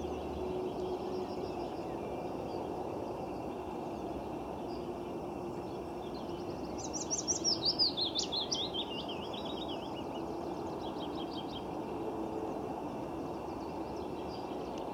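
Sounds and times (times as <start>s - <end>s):
willow warbler singing: 0.0s - 14.9s.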